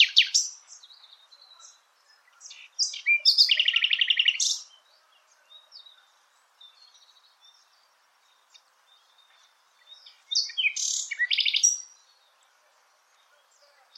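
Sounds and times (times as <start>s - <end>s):
bird chirping and trilling: 0.0s - 12.5s.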